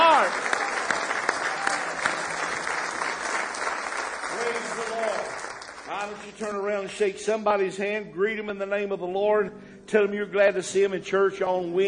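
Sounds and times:
church audience clapping in praise: 0.0s - 7.0s
speech: 6.4s - 11.8s.

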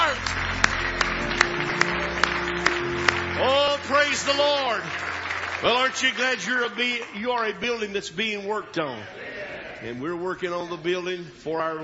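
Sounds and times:
sustained tone: 0.0s - 7.3s
congregation clapping in praise during a church service: 0.0s - 8.6s
speech: 5.6s - 11.8s.

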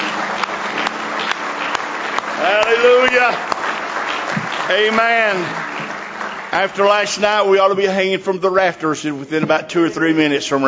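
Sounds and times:
congregation clapping hands in praise during a morning church service: 0.0s - 8.1s
speech: 2.5s - 3.5s, 4.7s - 5.6s, 6.5s - 10.6s.

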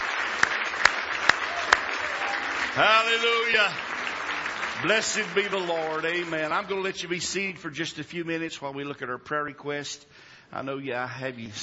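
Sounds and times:
audience clapping in praise: 0.0s - 7.2s
speech: 2.8s - 3.9s, 4.8s - 11.6s.

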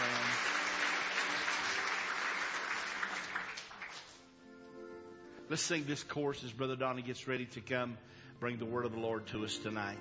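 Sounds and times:
church audience clapping hands: 0.0s - 4.3s
speech: 5.5s - 9.9s.

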